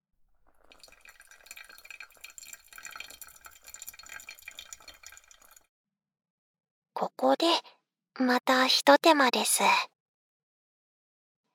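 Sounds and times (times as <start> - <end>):
hot water poured slowly over ground coffee beans: 0.2 - 5.6
speech: 7.0 - 9.9.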